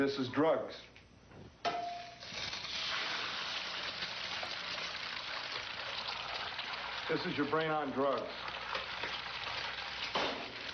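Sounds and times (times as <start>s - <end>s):
speech: 0.0s - 0.9s, 7.1s - 8.6s
egg sizzling and crackling in a hot pan: 2.0s - 10.7s.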